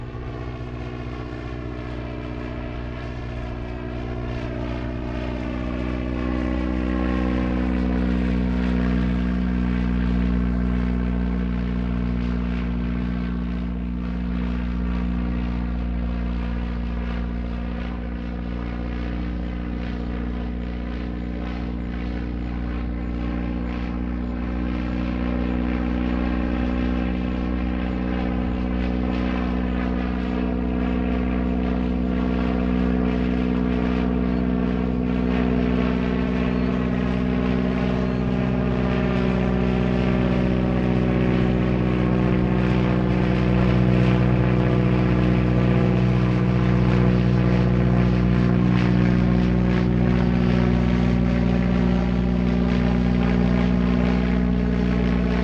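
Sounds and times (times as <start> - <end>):
propeller plane engine high and steady: 0.0 - 55.4.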